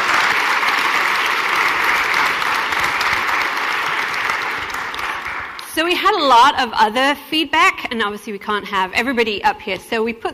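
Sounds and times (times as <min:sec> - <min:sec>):
large audience applauding: 0:00.0 - 0:05.6
speech: 0:05.8 - 0:10.3.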